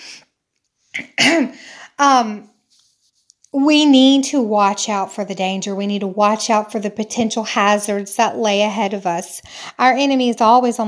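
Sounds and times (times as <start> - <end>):
person sneezing: 1.0 - 1.7
speech: 1.0 - 2.5, 3.5 - 10.8.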